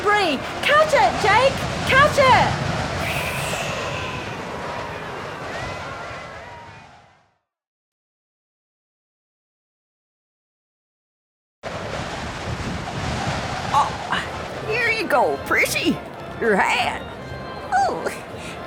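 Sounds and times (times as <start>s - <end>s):
strong outdoor wind buffeting the microphone: 0.0s - 7.2s, 11.7s - 18.6s
speech: 0.2s - 2.8s, 15.8s - 16.8s.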